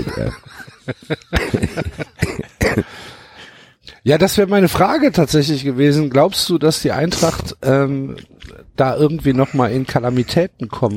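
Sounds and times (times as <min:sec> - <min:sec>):
laughter: 0:00.0 - 0:02.6
speech: 0:00.2 - 0:02.1, 0:04.0 - 0:10.9
person coughing: 0:01.4 - 0:03.0.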